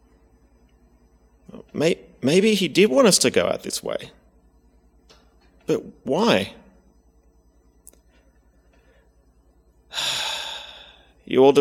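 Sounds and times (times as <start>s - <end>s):
speech: 1.7s - 4.2s, 5.7s - 6.6s, 11.3s - 11.5s
deep gasp-like inhale taken to steady nerves: 9.9s - 11.2s.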